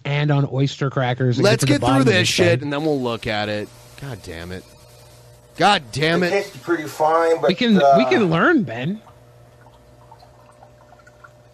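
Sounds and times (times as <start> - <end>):
speech: 0.2 - 4.8, 5.6 - 9.1
small fizzing ticks of mead foaming up: 9.0 - 11.5
sugar pouring into a jar of mead containing yeast: 9.0 - 11.5.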